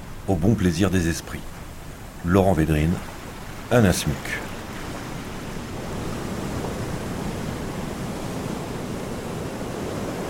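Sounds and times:
large ocean waves crashing on a shore: 0.0s - 10.2s
speech: 0.3s - 1.6s, 2.2s - 3.1s, 3.7s - 4.5s.

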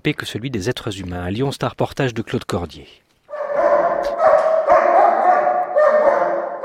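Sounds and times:
speech: 0.0s - 3.0s
German shepherd scent dog barking and yipping: 3.3s - 6.6s.

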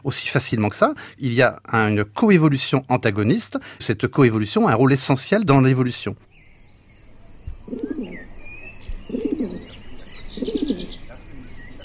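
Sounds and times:
speech: 0.0s - 6.3s
faint higher chirps of other birds: 6.1s - 11.8s
pigeons cooing: 7.5s - 11.8s.

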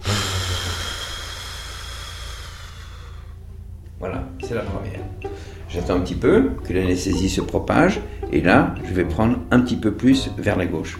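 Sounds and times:
patient breathing out on instruction during a procedure under local anesthesia: 0.0s - 3.5s, 5.2s - 5.7s
speech: 4.0s - 10.9s.

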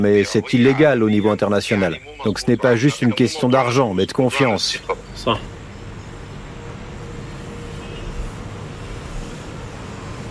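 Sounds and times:
murmur of voices: 0.0s - 5.5s
speech: 0.0s - 5.5s
traffic rumble around a busy town square: 0.0s - 10.2s.

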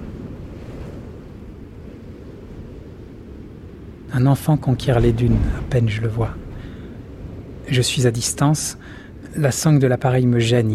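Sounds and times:
sea waves breaking under strong wind: 0.0s - 10.7s
strong wind buffeting the microphone: 0.0s - 10.7s
speech: 4.1s - 6.4s, 7.7s - 10.7s.

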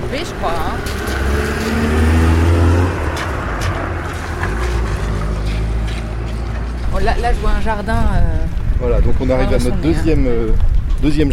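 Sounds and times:
garbage truck heavy diesel engine droning: 0.0s - 6.8s
speech: 0.1s - 1.1s, 7.1s - 11.3s.

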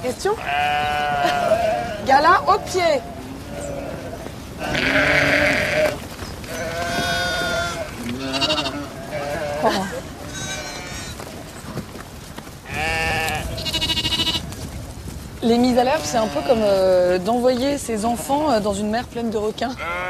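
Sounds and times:
speech: 0.0s - 3.2s, 4.6s - 5.5s, 15.4s - 20.0s
flock of sheep and lambs bleating: 0.0s - 11.2s, 12.6s - 14.6s, 15.8s - 17.2s, 17.9s - 18.7s, 19.6s - 20.0s.

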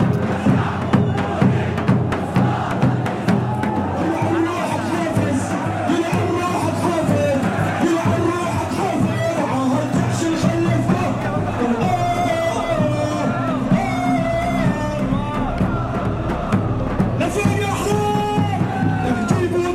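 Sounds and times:
large crowd chanting and singing revolutionary songs in unison at a rally: 0.0s - 19.7s.

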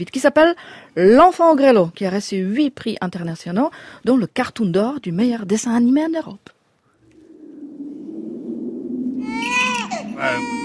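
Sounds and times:
speech: 0.0s - 6.6s, 10.2s - 10.6s
baby in a basket crying in a forest: 9.2s - 10.6s.

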